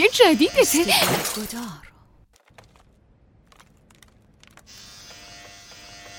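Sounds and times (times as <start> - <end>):
speech: 0.0 - 1.9
electric shaver buzzing: 4.7 - 6.1.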